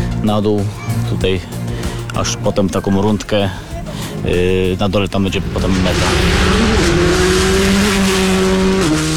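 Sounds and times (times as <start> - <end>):
speech: 0.2 - 1.6, 2.2 - 7.0
rally car engine roaring on a rally stage: 5.2 - 9.1.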